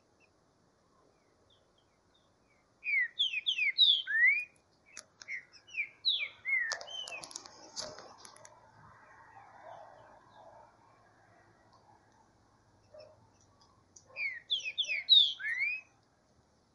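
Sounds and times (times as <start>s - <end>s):
green-winged saltator singing rapid phrases of bright slurred whistles: 2.8s - 4.5s, 5.3s - 7.3s, 14.1s - 15.9s
rustling and crackling: 6.7s - 8.9s.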